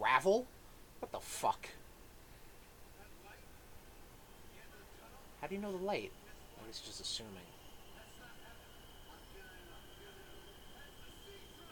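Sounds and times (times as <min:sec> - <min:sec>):
speech: 0:00.2 - 0:01.8, 0:05.4 - 0:07.6
C line subway train rumbling past with metallic whines: 0:04.2 - 0:11.6
indistinct voices: 0:04.5 - 0:11.6.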